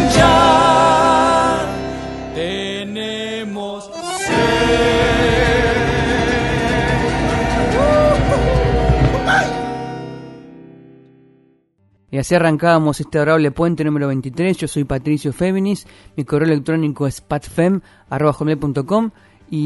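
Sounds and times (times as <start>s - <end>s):
Argentine gato folk song playing: 0.0s - 11.3s
speech: 12.2s - 19.6s.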